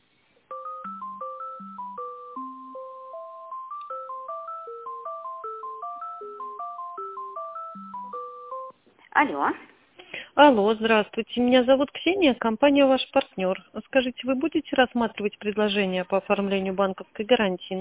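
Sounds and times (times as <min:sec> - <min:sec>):
telephone hold melody of short electronic tones during a call transfer: 0:00.5 - 0:08.8
speech: 0:09.2 - 0:09.7, 0:10.4 - 0:17.8.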